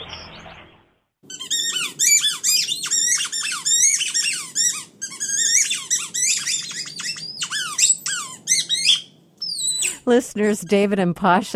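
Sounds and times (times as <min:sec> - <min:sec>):
dog squeaking a squeaky toy: 0:01.2 - 0:10.0
speech: 0:10.1 - 0:11.5.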